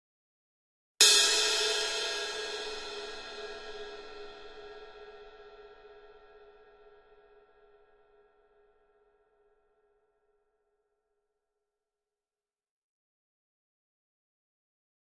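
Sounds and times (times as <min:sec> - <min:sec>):
medium cymbal single hit: 0:01.0 - 0:06.0.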